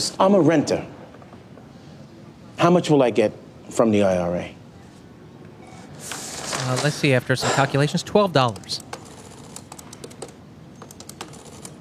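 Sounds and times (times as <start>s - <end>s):
speech: 0.0s - 1.0s, 2.6s - 4.6s, 6.0s - 8.9s
typing on a computer keyboard: 8.4s - 11.8s.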